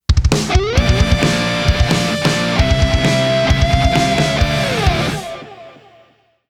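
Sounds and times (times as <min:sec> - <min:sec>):
epic metal music: 0:00.3 - 0:06.1.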